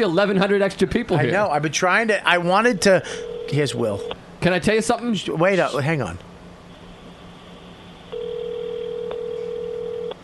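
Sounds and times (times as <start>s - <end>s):
speech: 0.0s - 6.3s
steady telephone dial tone: 3.2s - 3.6s, 8.1s - 10.2s.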